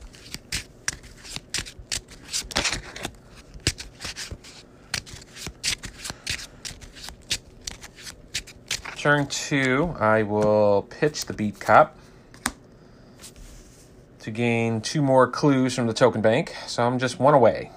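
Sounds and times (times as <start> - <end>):
deck of game cards being shuffled during a card game: 0.0 - 11.7
speech: 9.0 - 12.0, 14.3 - 17.7.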